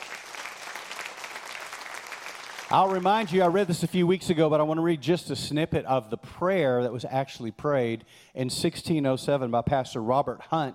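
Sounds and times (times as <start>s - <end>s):
applause: 0.0s - 3.9s
speech: 2.7s - 10.7s.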